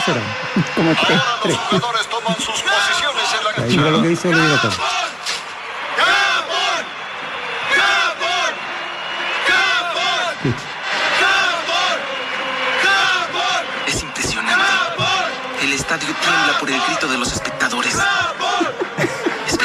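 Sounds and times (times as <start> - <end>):
laughter: 0.0 - 4.8, 10.4 - 10.8, 13.9 - 19.6
speech: 0.0 - 5.1
stadium crowd of football spectators shouting and cheering: 0.0 - 19.6.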